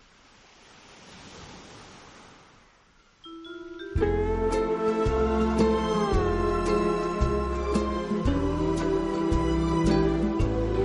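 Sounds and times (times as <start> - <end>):
ocean waves breaking on a beach: 0.0 - 10.8
sustained tonal musical note: 3.6 - 10.8.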